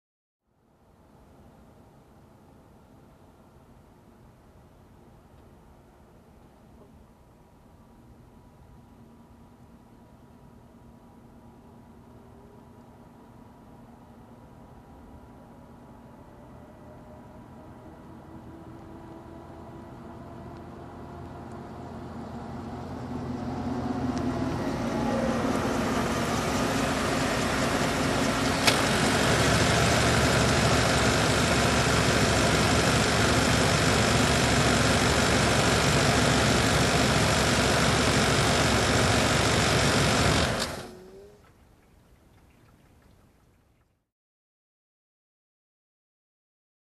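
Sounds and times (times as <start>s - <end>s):
old car approaching and parking: 11.2s - 41.0s.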